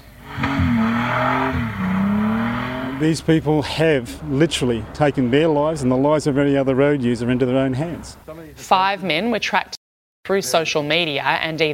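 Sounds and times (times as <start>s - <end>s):
car engine revving hard: 0.0s - 8.3s
tires squealing and skidding in a spinout: 0.2s - 8.2s
speech: 3.0s - 11.7s.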